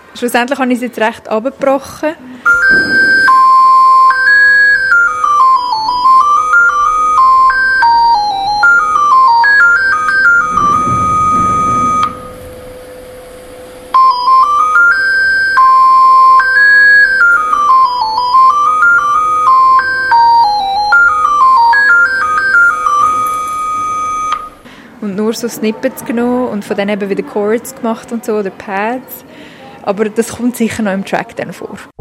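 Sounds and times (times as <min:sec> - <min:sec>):
speech: 0:00.2 - 0:03.0, 0:25.4 - 0:31.9
long electronic ringtone of an analog telephone: 0:02.5 - 0:12.4, 0:14.0 - 0:24.6.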